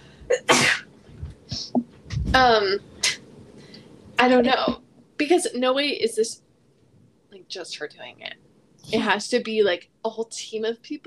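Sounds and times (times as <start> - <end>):
person sneezing: 0.3 - 0.9
speech: 2.3 - 2.9, 4.2 - 6.4, 7.5 - 11.0.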